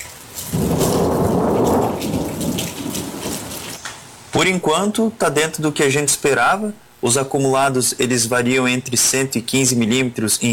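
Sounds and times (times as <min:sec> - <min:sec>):
heavy rain pattering: 0:00.0 - 0:04.1
thunder rumbling: 0:00.4 - 0:03.8
speech: 0:04.4 - 0:10.5.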